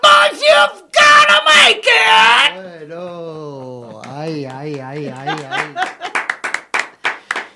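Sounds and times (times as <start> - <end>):
man shouting a drawn-out war cry: 0.0 - 2.6
speech: 0.4 - 3.6, 4.2 - 6.2
laughter: 3.7 - 6.4.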